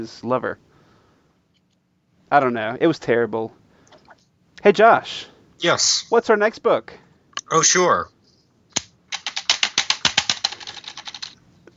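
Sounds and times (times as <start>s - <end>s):
speech: 0.0s - 0.7s, 2.3s - 3.6s, 4.6s - 8.1s
typing on a computer keyboard: 8.7s - 11.4s.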